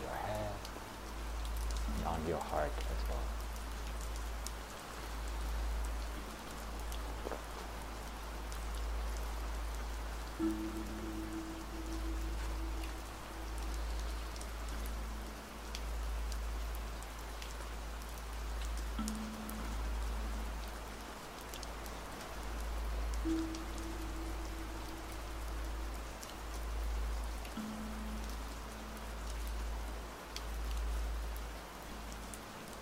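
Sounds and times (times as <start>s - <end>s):
rain pattering on a surface: 0.0s - 32.8s
speech: 2.0s - 3.4s.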